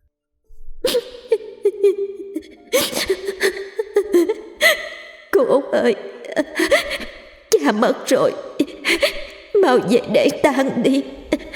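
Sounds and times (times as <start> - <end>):
woman sobbing in choked, halting cries with high-pitched wails: 0.8 - 5.2, 6.0 - 7.3, 8.4 - 9.5, 11.0 - 11.5
speech: 5.7 - 6.6, 7.7 - 11.5.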